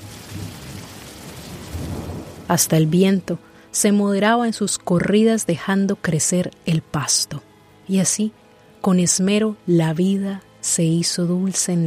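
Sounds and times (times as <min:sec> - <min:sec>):
steady dense rain hissing: 0:00.0 - 0:02.6
deep rolling rumbles of thunder: 0:00.0 - 0:02.9
speech: 0:02.5 - 0:11.8.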